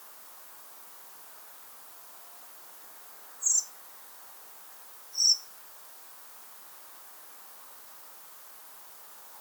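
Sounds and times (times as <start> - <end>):
soft steady background hiss: 0.0 - 9.3
common blackbird Turdus merula thin hissing whistles: 3.4 - 3.7, 5.2 - 5.4.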